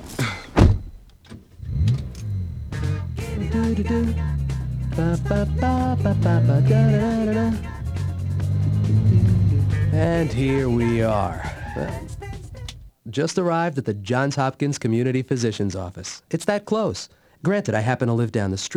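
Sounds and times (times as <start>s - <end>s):
car door thumping shut: 0.0s - 12.9s
speech: 3.6s - 4.4s, 5.0s - 7.7s, 10.0s - 12.1s, 13.1s - 18.7s.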